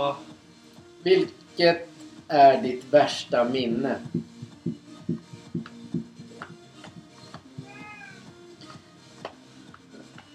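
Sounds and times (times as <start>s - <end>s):
speech: 0.0s - 0.3s, 1.0s - 4.3s
steady thumping rhythm: 2.3s - 10.3s
cat meowing: 7.6s - 8.2s.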